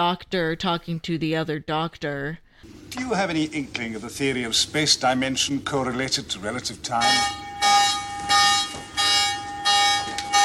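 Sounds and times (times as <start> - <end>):
speech: 0.0 - 7.4
alarm siren going off: 6.8 - 10.4.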